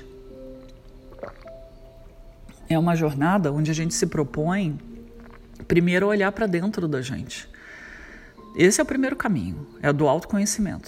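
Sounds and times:
faint steady hum: 0.0 - 10.8
person sipping water: 0.4 - 2.6, 4.9 - 5.7
soft gulp of water: 0.6 - 1.8
speech: 1.2 - 1.7, 2.7 - 4.9, 5.7 - 7.6, 8.5 - 10.8.

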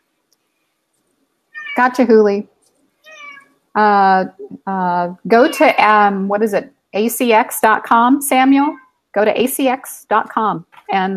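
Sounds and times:
cat meowing: 1.6 - 1.9, 3.0 - 3.5, 5.4 - 5.8, 8.7 - 8.9
speech: 1.8 - 2.5, 3.8 - 11.1.

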